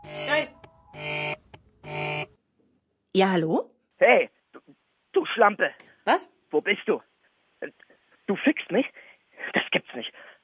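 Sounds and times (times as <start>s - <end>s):
telephone ringing in buzzy electronic bursts: 0.0s - 2.3s
speech: 3.2s - 4.4s, 5.4s - 9.0s, 9.7s - 10.4s.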